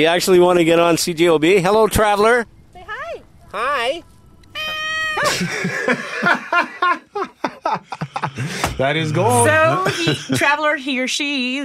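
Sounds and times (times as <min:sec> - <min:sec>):
speech: 0:00.0 - 0:02.6, 0:03.5 - 0:04.1, 0:05.2 - 0:11.6
cat yowling meow into microphone: 0:04.4 - 0:05.4
laughter: 0:05.2 - 0:10.6.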